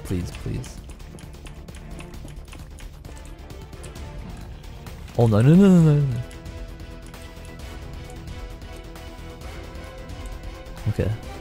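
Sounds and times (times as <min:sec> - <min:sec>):
computer keyboard typing: 0:00.0 - 0:09.0
speech: 0:00.1 - 0:00.9, 0:05.2 - 0:06.3, 0:10.9 - 0:11.3.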